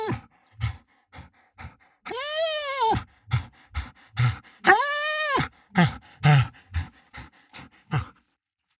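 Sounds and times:
dog whining with high nasal whimpers: 0.0 - 0.2, 2.1 - 3.5, 4.2 - 5.5
dog panting with breathy pants: 0.0 - 8.3.

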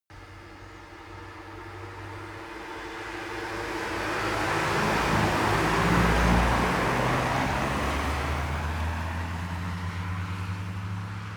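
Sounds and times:
multiple cars driving by at medium speed: 1.6 - 11.3.

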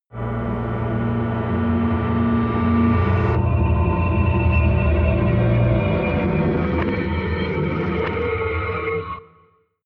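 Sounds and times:
reversed drone feedback: 0.1 - 8.6.

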